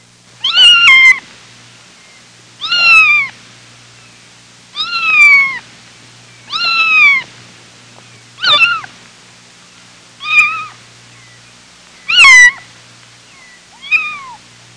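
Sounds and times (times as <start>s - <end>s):
kitten meowing: 0.4s - 1.2s, 2.6s - 3.4s, 4.7s - 5.6s, 6.5s - 7.3s, 8.4s - 8.9s, 10.2s - 10.8s, 12.1s - 12.6s, 13.7s - 14.4s.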